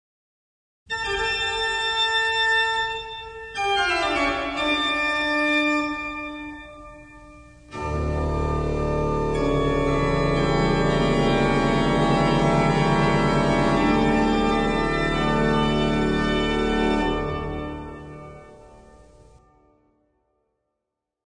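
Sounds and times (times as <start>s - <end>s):
organ: 1.0s - 19.4s.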